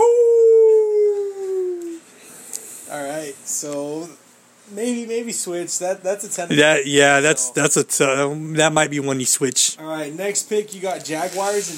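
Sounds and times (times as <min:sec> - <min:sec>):
wolf howling: 0:00.0 - 0:02.0
speech: 0:03.6 - 0:11.7.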